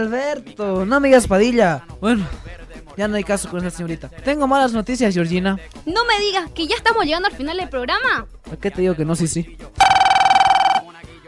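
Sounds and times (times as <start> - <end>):
speech: 0.0 - 9.9
telephone ringing with an incoming call to a radio show: 9.8 - 10.9.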